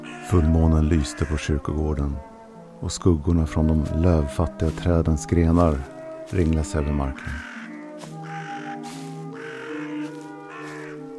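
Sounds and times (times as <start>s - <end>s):
crows cawing in a churchyard at night: 0.0s - 1.8s, 5.6s - 11.1s
speech: 0.3s - 7.5s.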